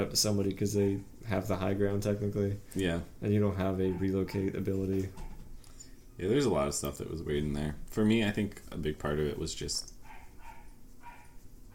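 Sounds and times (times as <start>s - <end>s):
speech: 0.0s - 5.3s, 6.2s - 9.9s
dogs barking: 3.6s - 5.6s, 9.9s - 11.7s.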